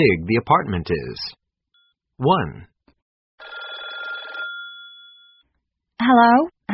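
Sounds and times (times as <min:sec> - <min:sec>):
speech: 0:00.0 - 0:01.4, 0:02.2 - 0:02.7, 0:06.0 - 0:06.7
old-style telephone bell ringing: 0:03.4 - 0:05.5.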